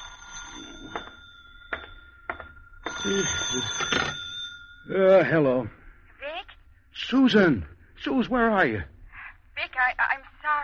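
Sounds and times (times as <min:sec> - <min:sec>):
telephone ringing in an apartment: 0:00.0 - 0:05.4
speech: 0:03.0 - 0:04.2, 0:04.9 - 0:05.8, 0:07.0 - 0:08.9.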